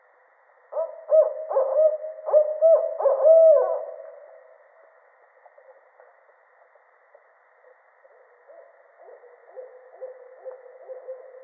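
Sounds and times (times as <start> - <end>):
barred owl giving loud resonant hoots: 0.7 - 4.5, 8.4 - 11.4.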